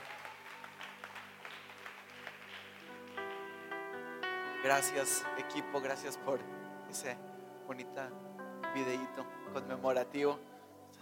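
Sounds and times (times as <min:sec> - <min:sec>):
audience applauding: 0:00.0 - 0:03.6
sustained musical chords: 0:02.8 - 0:11.0
speech: 0:04.6 - 0:11.0.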